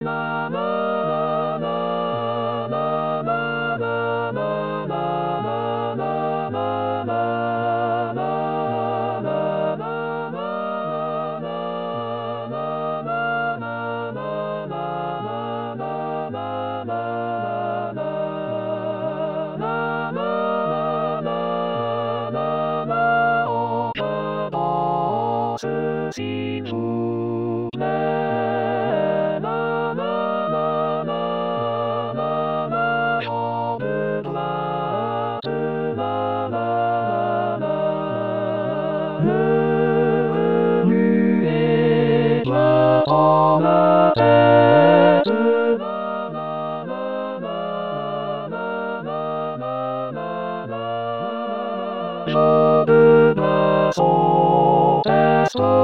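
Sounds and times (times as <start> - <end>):
soprano singing: 0.0 - 55.8.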